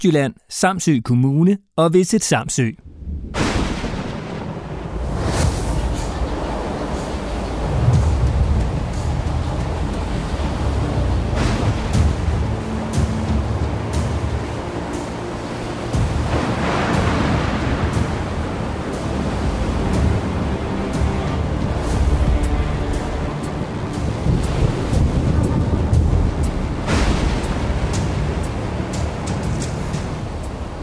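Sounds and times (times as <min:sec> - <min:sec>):
speech: 0:00.0 - 0:03.4
heavy stormy sea waves crashing: 0:02.3 - 0:30.8
stormy wind: 0:02.8 - 0:30.8.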